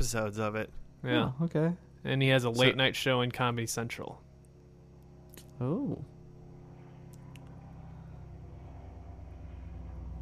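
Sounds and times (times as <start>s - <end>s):
speech: 0.0s - 4.2s, 5.6s - 6.1s
airplane flying overhead: 6.0s - 10.2s.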